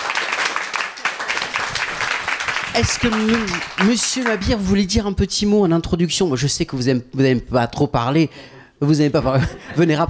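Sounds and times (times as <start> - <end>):
audience applauding the mayor of the commune of Roc: 0.0 - 5.1
speech: 2.8 - 10.0.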